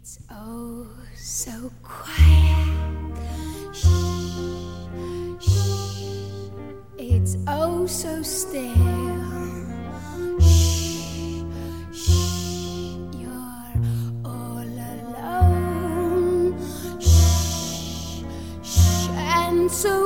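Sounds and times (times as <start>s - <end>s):
speech: 0.1s - 2.7s, 7.9s - 9.0s
sustained musical tones: 2.0s - 20.0s
loud breathy inhales and exhales: 3.1s - 6.7s, 9.7s - 13.2s, 13.8s - 14.2s, 16.5s - 19.3s.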